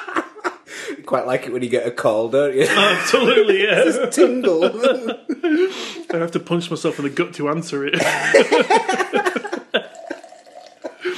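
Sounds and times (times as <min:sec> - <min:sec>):
laughter: 0:00.0 - 0:01.4, 0:02.5 - 0:11.1
speech: 0:01.1 - 0:09.4
water trickling and dripping: 0:09.3 - 0:11.0
water pouring into a glass: 0:09.7 - 0:11.0.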